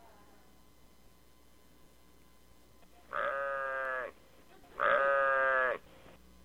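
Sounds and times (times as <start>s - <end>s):
human voice imitating a sheep bleating: 3.0s - 5.8s.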